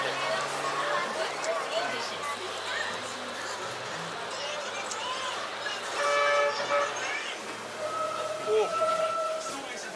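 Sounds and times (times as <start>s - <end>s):
bus engine drone inside a bumpy rattling bus: 0.0s - 9.9s
people chattering quietly: 0.0s - 9.9s
road rumble inside a bus: 0.0s - 9.9s
vehicle horns tooting briefly: 5.8s - 9.8s.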